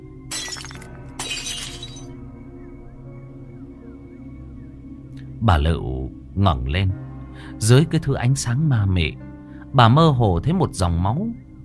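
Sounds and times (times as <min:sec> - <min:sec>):
glass candle holders shattering as candles are knocked over by a curtain: 0:00.3 - 0:02.1
glass shards scattering: 0:00.3 - 0:02.1
speech: 0:05.4 - 0:07.0, 0:07.6 - 0:11.4.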